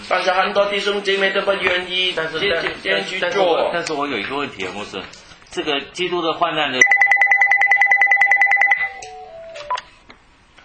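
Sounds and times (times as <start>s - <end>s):
speech: 0.1s - 6.9s
landline telephone ringing for an incoming call: 6.8s - 9.8s
shifting electronic tones: 6.8s - 9.9s.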